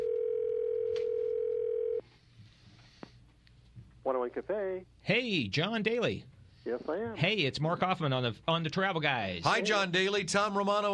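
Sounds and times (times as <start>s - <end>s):
electronic phone ring tone: 0.0s - 2.0s
speech: 4.1s - 10.9s.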